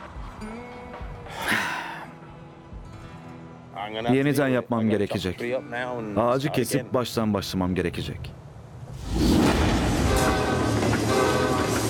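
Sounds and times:
speech: 3.8s - 8.4s
gravel freight train rumbling on rails: 8.8s - 11.8s.

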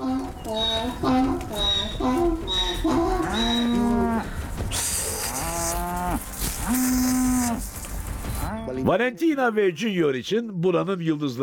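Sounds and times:
several cows mooing: 0.0s - 7.7s
speech: 8.8s - 11.4s.

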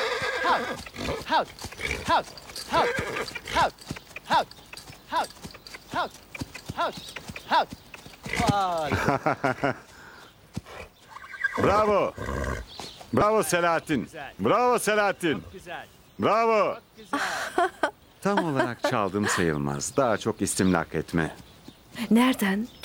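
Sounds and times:
stallion whinnying: 0.0s - 9.0s, 11.0s - 12.7s
hooves clip-clopping: 0.0s - 11.9s, 18.4s - 22.5s
speech: 0.5s - 9.9s, 11.6s - 22.8s
laughter: 8.8s - 9.9s, 17.1s - 19.6s.

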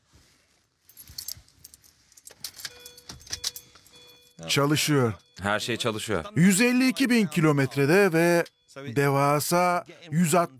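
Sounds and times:
car keys jangling as they are handed over: 0.9s - 4.4s
speech: 4.4s - 10.5s.

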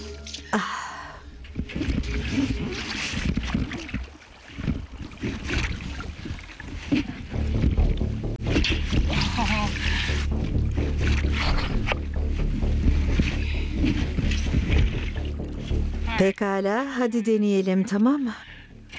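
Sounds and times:
water splashing as a small boat is launched: 0.0s - 16.4s
small boat hull knocking and scraping: 1.5s - 9.1s, 10.5s - 15.9s
speech: 16.3s - 18.5s.

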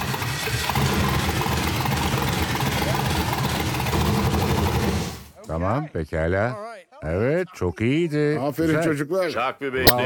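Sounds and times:
car engine idling after camshaft position sensor replacement: 0.0s - 5.1s
speech: 5.6s - 10.0s.

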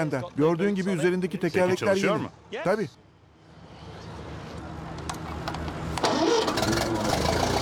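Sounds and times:
speech: 0.0s - 3.0s
late-1940s European-model Ferguson tractor starter cranking: 6.0s - 7.6s.

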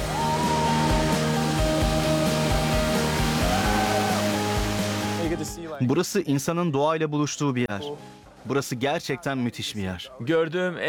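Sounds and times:
man-made waterfall by a clear-water ocean beach: 0.0s - 5.4s
speech: 5.8s - 10.8s.

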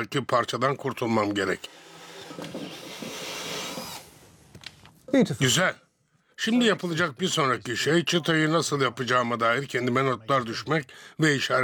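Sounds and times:
speech: 0.0s - 1.8s, 2.4s - 3.2s, 5.1s - 5.8s, 6.4s - 11.6s
small flush-cut saw rasping through wood: 1.6s - 4.2s.

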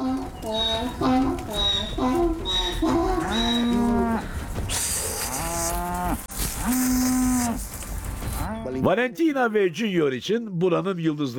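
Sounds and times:
cows on a farm mooing during a move to new pasture: 0.0s - 7.6s
steady outdoor noise: 0.0s - 9.4s
speech: 0.5s - 2.2s, 8.8s - 11.3s.

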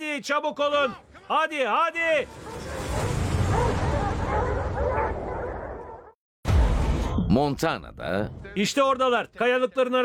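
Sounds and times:
speech: 0.2s - 2.5s, 7.3s - 10.0s
hunting dogs barking at a bear outdoors: 2.3s - 6.1s.

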